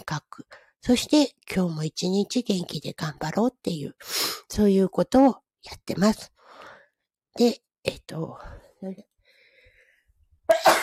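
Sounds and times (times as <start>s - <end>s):
speech: 0.0s - 6.7s, 7.4s - 9.1s
faint breathy sounds: 6.4s - 7.1s, 8.4s - 10.2s
sneeze: 10.5s - 10.8s.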